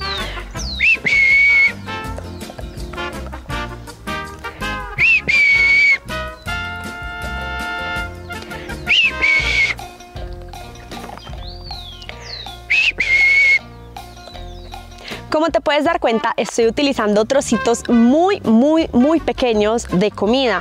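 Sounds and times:
music: 0.0 - 20.5
person whistling to call a dog: 0.1 - 1.8, 4.9 - 6.2, 8.8 - 9.8, 11.9 - 13.7
speech: 15.4 - 20.5.

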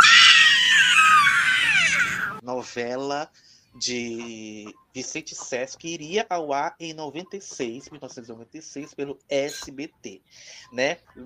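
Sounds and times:
shrill scream from a played recording: 0.0 - 2.4
speech: 2.5 - 11.2.

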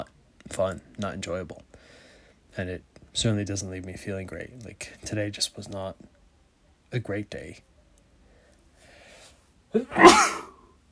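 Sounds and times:
speech: 0.6 - 6.1, 6.9 - 7.7, 9.7 - 10.4
person sneezing: 9.8 - 10.6.

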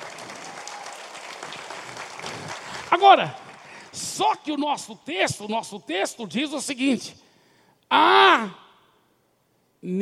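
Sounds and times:
crowd at a Christian sermon applauding: 0.0 - 4.0
speech: 2.9 - 3.4, 4.2 - 7.2, 7.9 - 8.6, 9.8 - 10.0.

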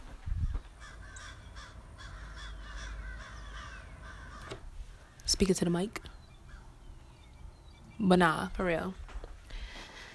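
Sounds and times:
low rumble of wind or traffic: 0.0 - 10.1
crows cawing outdoors: 0.5 - 5.3, 6.4 - 6.8
speech: 5.3 - 6.1, 8.0 - 9.0.

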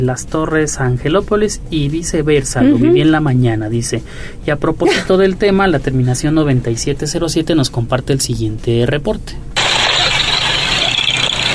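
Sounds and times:
speech: 0.0 - 9.5
motor idling in a traffic jam near Masari: 9.6 - 11.5.

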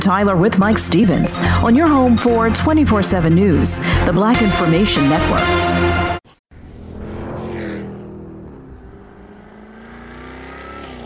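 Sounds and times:
speech: 0.0 - 6.0
575-horsepower supercharged V8 Jaguar F-Type R sports car engine roaring: 6.5 - 11.0.

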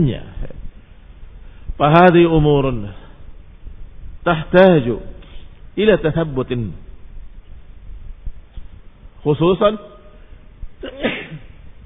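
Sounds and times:
speech: 0.0 - 0.3, 1.8 - 3.0, 4.2 - 5.1, 5.8 - 6.8, 9.2 - 9.9
person sneezing: 10.8 - 11.5.

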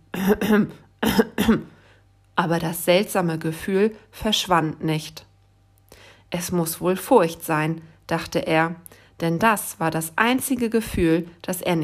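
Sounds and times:
big polar bear clearing his throat: 0.1 - 1.8
speech: 0.2 - 1.8, 2.4 - 5.3, 5.9 - 11.8.

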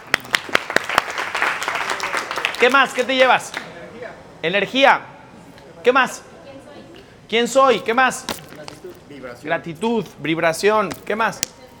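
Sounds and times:
applause from a small group: 0.0 - 3.7
speech: 2.6 - 3.6, 4.4 - 5.1, 5.8 - 6.3, 7.3 - 8.4, 9.2 - 11.5.

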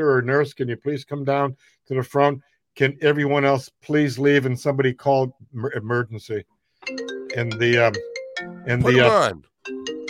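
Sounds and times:
speech: 0.0 - 9.8
phone ringtone with stepped electronic melody: 6.8 - 10.0.

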